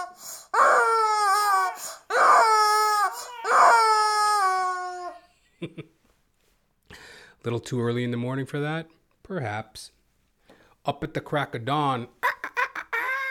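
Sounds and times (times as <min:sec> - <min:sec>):
rubber chicken toy squeezed: 0:00.0 - 0:05.2, 0:12.2 - 0:13.3
speech: 0:05.7 - 0:06.0, 0:07.4 - 0:10.0, 0:10.8 - 0:12.2.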